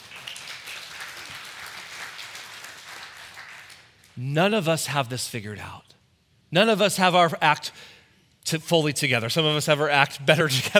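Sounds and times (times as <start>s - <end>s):
church audience applauding: 0.0s - 4.0s
speech: 4.2s - 5.9s, 6.5s - 10.7s
laughter: 10.4s - 10.7s.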